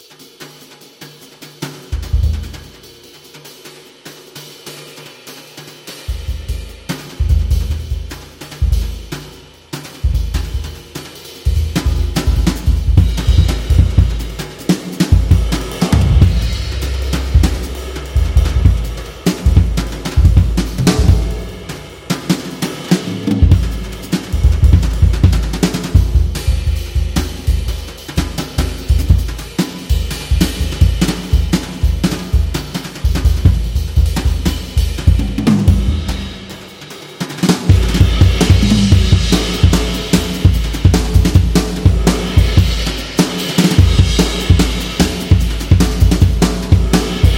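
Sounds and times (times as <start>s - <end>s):
swing jazz drum solo: 0.0s - 47.3s.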